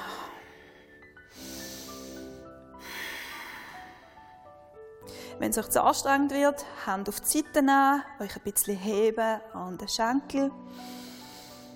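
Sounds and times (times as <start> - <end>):
deep inhale and forceful exhale: 0.0 - 5.4, 10.7 - 11.7
speech: 5.4 - 10.9.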